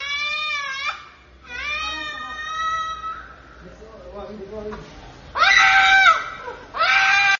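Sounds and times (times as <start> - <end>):
child crying: 0.0 - 3.4, 5.4 - 7.3.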